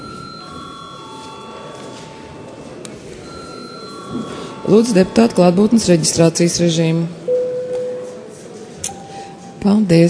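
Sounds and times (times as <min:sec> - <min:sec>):
parliament chamber electric bell ringing: 0:00.0 - 0:02.6, 0:03.2 - 0:05.9
speech: 0:04.1 - 0:07.2, 0:09.6 - 0:10.0.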